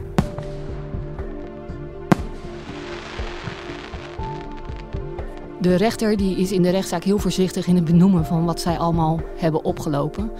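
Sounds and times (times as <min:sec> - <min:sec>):
sharp firework bang: 0:02.1 - 0:05.3
faint crackling: 0:02.1 - 0:05.7
speech: 0:05.6 - 0:10.3.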